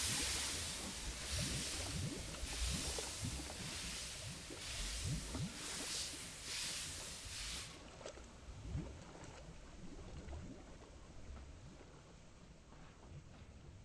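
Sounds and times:
steam engine of an undersea express train chuffing: 0.0 - 7.8
dense rushing watery hiss: 0.0 - 13.0.

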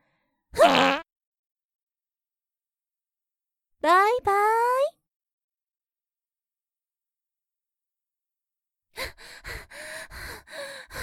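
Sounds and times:
fart: 0.6 - 1.0
speech: 3.8 - 4.9.

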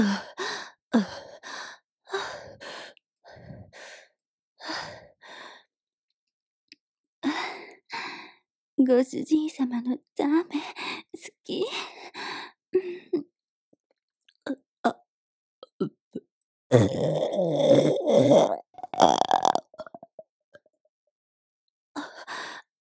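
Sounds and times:
speech: 0.0 - 0.3, 0.9 - 1.2, 8.9 - 13.0, 16.7 - 19.2
long loud gurgling burp: 16.7 - 20.2
mouth noises: 16.8 - 20.2.

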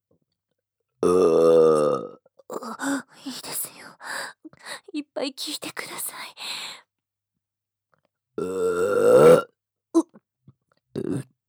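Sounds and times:
loud voiced burp: 1.0 - 2.2, 8.4 - 9.5, 11.0 - 11.3
speech: 1.0 - 2.2, 4.6 - 6.8.

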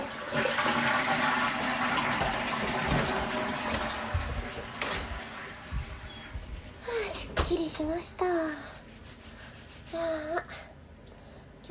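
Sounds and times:
toilet flushing: 0.0 - 6.4
speech: 7.8 - 8.8, 10.0 - 10.6.

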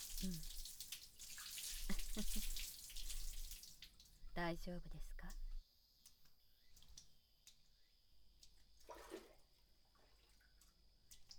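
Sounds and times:
water running from a tap: 0.0 - 4.2
speech: 0.2 - 0.6, 2.2 - 2.6, 4.4 - 5.4.

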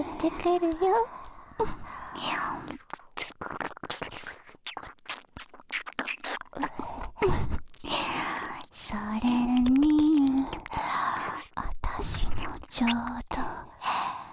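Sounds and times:
speech: 0.2 - 4.3
wet licking and smacking mouth sounds with clicks: 2.2 - 13.2.

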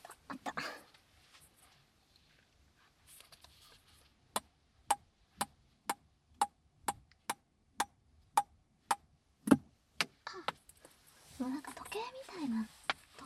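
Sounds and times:
soft breathy voice: 0.0 - 1.4, 10.2 - 13.2
quiet rustling: 0.0 - 4.3, 10.2 - 13.2
small ball tapping: 4.4 - 10.6.

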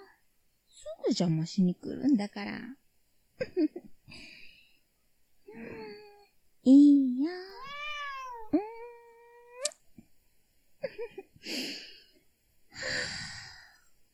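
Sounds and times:
speech: 0.8 - 2.8, 3.4 - 4.4, 5.5 - 6.0, 6.6 - 7.8
cat meowing: 7.5 - 9.7.

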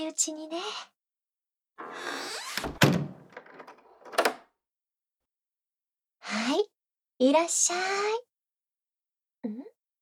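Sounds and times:
speech: 0.0 - 1.0, 1.8 - 3.0, 6.4 - 8.3, 9.4 - 9.7
door swinging and shutting with a solid thunk: 1.8 - 4.4
latch or handle rattling: 1.8 - 4.4.

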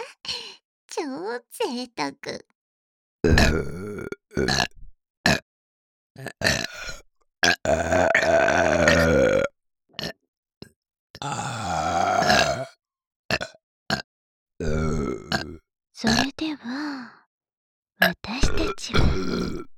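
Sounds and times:
speech: 1.0 - 2.5, 3.2 - 4.7
person burping: 3.2 - 5.4, 6.2 - 10.2, 11.2 - 14.0, 14.6 - 16.3, 18.4 - 19.7.

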